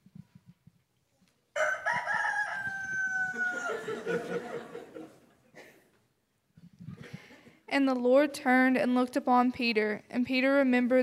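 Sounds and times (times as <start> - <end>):
rooster crowing: 1.6 - 4.7
laughter: 3.4 - 5.9
speech: 4.1 - 4.9, 7.7 - 11.0.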